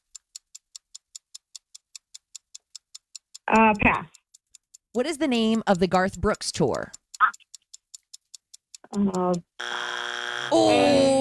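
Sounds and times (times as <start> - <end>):
clock ticking: 0.0 - 10.6
speech: 3.5 - 4.2, 5.0 - 7.0, 9.0 - 9.7, 10.5 - 11.1
quiz game buzzer: 9.6 - 11.1.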